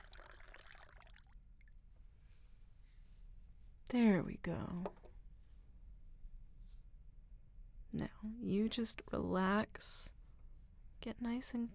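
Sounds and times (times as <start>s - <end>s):
water pouring into a tall glass of ice water: 0.0s - 1.4s
speech: 3.9s - 5.0s, 8.0s - 10.2s, 11.0s - 11.7s.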